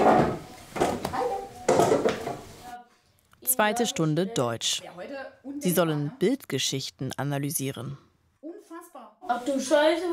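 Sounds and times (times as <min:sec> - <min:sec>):
chairs scraping and bumping across a hard classroom floor: 0:00.0 - 0:01.1
speech: 0:03.6 - 0:08.1, 0:09.3 - 0:10.1.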